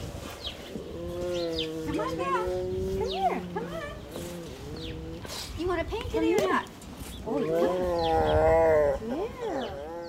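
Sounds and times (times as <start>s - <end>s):
female tiger growling: 0.0s - 5.8s, 7.2s - 10.0s
speech: 5.8s - 8.5s.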